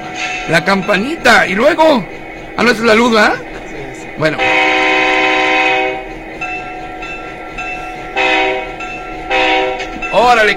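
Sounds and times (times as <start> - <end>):
rumbling rail noise: 0.0 - 10.5
speech: 0.5 - 3.5, 4.2 - 4.7, 10.2 - 10.5
train horn blasts: 4.4 - 6.2, 8.0 - 10.0.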